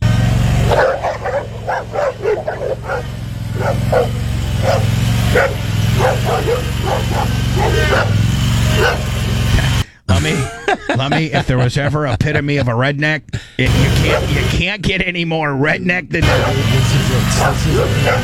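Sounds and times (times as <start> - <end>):
low rumble of a mower engine being driven: 0.0 - 10.5, 13.6 - 14.6, 16.2 - 18.2
dogs barking and yipping excitedly around a mower: 0.6 - 9.8, 13.7 - 14.5, 16.2 - 18.2
laughter: 5.5 - 12.8, 13.6 - 14.6, 16.2 - 18.2
speech: 11.1 - 18.2.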